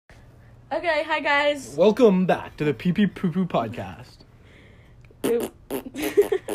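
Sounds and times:
speech: 0.7s - 4.2s, 5.2s - 6.5s
sputtering fart: 5.2s - 6.5s.

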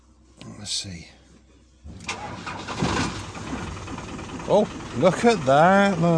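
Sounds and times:
car engine running with a loud rough rumble: 0.0s - 6.1s
speech: 0.6s - 1.2s, 1.8s - 3.2s, 4.5s - 6.1s
car engine cranking and starting after long being parked: 1.8s - 6.1s.

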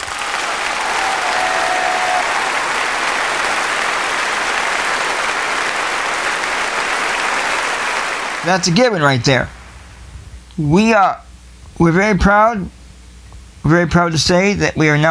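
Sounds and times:
sizable crowd applauding: 0.0s - 9.2s
speech: 8.4s - 9.6s, 10.6s - 12.8s, 13.6s - 15.0s.

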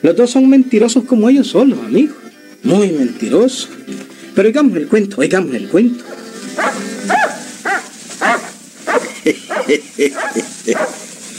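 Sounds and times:
speech: 0.0s - 7.2s, 9.3s - 11.0s
dog barking: 6.0s - 11.1s
laughter: 8.9s - 11.1s.

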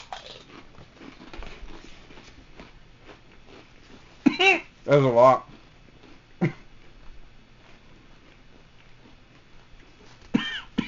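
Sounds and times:
person coughing while eating: 4.2s - 4.7s, 6.4s - 6.7s, 10.3s - 10.8s
speech: 4.9s - 5.5s.

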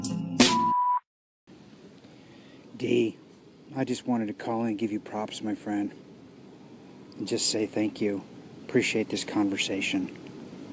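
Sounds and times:
voicemail answering machine electronic beep: 0.0s - 1.0s
speech: 2.8s - 6.0s, 7.2s - 10.3s.

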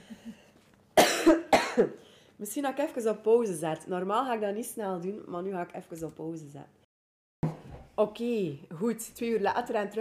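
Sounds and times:
person coughing: 1.0s - 2.0s
speech: 1.3s - 6.8s, 8.0s - 10.0s.

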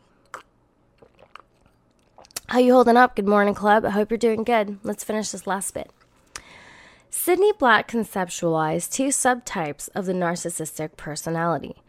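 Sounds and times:
person sipping a drink: 0.2s - 2.5s
faint wet mouth clicks: 0.3s - 2.5s
person swallowing: 0.3s - 2.5s
speech: 2.5s - 6.0s, 7.2s - 11.8s.

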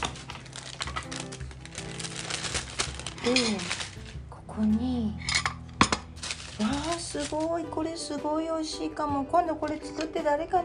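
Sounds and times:
paper rustling and crinkling: 0.0s - 4.2s, 6.0s - 7.7s
speech: 3.2s - 3.8s, 4.6s - 5.2s, 6.6s - 10.6s.

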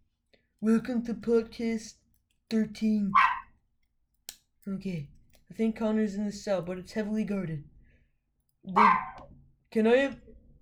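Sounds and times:
speech: 0.6s - 3.3s, 4.7s - 7.7s, 8.6s - 10.2s
guard dog barking: 3.1s - 3.5s, 8.7s - 9.2s.

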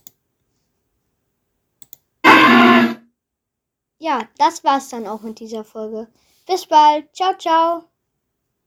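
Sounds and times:
tiny clicks: 1.8s - 2.1s
loud harsh distorted electronic creature cry: 2.2s - 3.0s
speech: 4.0s - 7.9s.

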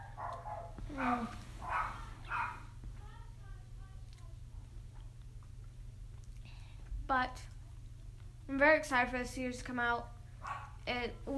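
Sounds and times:
pet dog whining: 0.0s - 2.6s
pet dog barking: 0.0s - 2.8s, 10.4s - 10.8s
steady low electrical hum: 0.0s - 11.3s
speech: 0.9s - 1.4s, 7.1s - 7.6s, 8.5s - 10.2s, 10.9s - 11.3s.

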